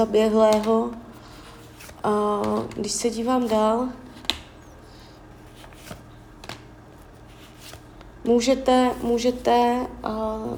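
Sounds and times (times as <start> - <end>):
speech: 0.0 - 1.0, 2.0 - 4.0, 8.2 - 10.5
playing cards being handled and drawn: 0.0 - 4.8, 5.4 - 8.1.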